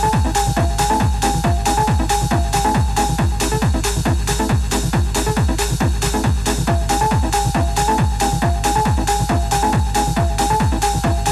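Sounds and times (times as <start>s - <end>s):
Detroit techno track kick drum pounding: 0.0s - 11.3s
repeating mid-pitched synth riff in a Detroit techno track: 0.0s - 11.3s.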